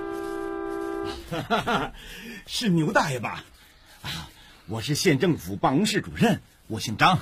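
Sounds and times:
car horn held in one continuous blast: 0:00.0 - 0:01.5
laughter: 0:01.1 - 0:02.1
speech: 0:01.1 - 0:07.1.

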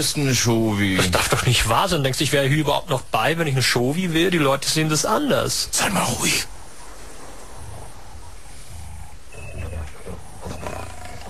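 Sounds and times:
speech: 0:00.0 - 0:06.6
noisy outdoor background: 0:00.0 - 0:11.2
lion roaring on an island: 0:07.2 - 0:11.2.

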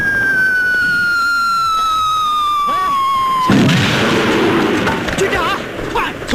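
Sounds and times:
artillery shell whistling in a war-film battle scene: 0:00.0 - 0:04.4
loud broadband artillery blast in a war-film battle scene: 0:00.0 - 0:05.3.

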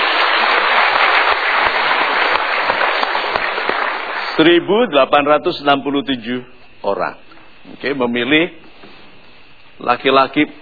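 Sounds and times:
audience applause at a live talk event: 0:00.0 - 0:04.4
speech: 0:04.4 - 0:09.0, 0:09.8 - 0:10.6.

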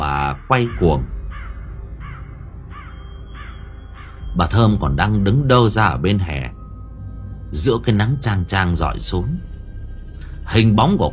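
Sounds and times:
low rumbling background: 0:00.0 - 0:11.1
crows cawing: 0:00.2 - 0:04.4
speech: 0:00.5 - 0:01.2, 0:04.4 - 0:06.6, 0:07.5 - 0:09.5, 0:10.5 - 0:11.1.

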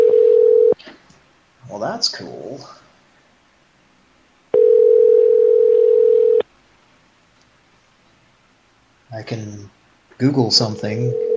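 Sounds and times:
telephone ringing tone on a call: 0:00.0 - 0:00.8, 0:04.5 - 0:06.4, 0:11.0 - 0:11.3
speech: 0:01.8 - 0:02.8, 0:09.1 - 0:11.3.

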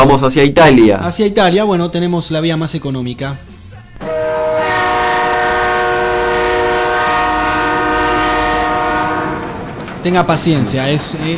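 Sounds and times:
speech: 0:00.1 - 0:04.1, 0:10.0 - 0:11.3
train horn blast: 0:04.0 - 0:09.7.

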